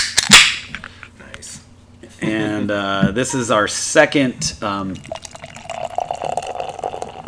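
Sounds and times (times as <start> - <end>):
speech: 2.2 - 5.2
beer being poured into a glass: 4.6 - 7.2.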